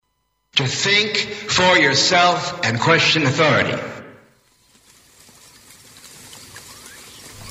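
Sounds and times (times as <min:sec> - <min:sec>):
speech: 0:00.6 - 0:04.0
steady rain pattering through a forest: 0:04.3 - 0:07.4.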